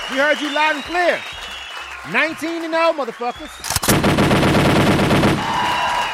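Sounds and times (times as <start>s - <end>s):
speech: 0.2s - 1.4s, 2.0s - 3.7s
rapid burst of gunfire sound effect: 3.6s - 6.0s.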